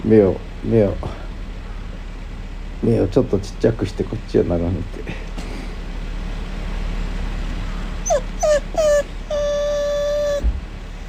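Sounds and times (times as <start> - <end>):
speech: 0.0 - 1.2, 2.8 - 5.4
low steady hum: 0.0 - 11.0
dog tapping with right paw: 8.0 - 11.0
dog whimpering while waiting for food: 8.0 - 11.0.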